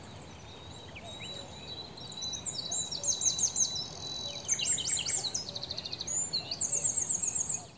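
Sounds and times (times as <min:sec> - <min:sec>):
Eurasian wren Troglodytes troglodytes singing: 0:00.0 - 0:07.7.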